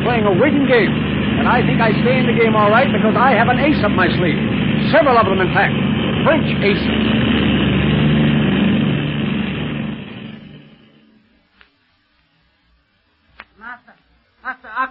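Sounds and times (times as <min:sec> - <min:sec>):
airplane engine droning while climbing in flight: 0:00.0 - 0:11.6
speech: 0:00.2 - 0:07.2.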